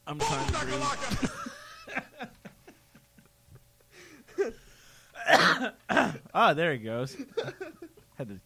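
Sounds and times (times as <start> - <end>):
speech: 0.1 - 1.5, 6.4 - 7.6, 8.2 - 8.4
laughter: 0.7 - 6.3, 7.1 - 8.0
person clearing throat with short raspy throat noises: 5.2 - 6.3.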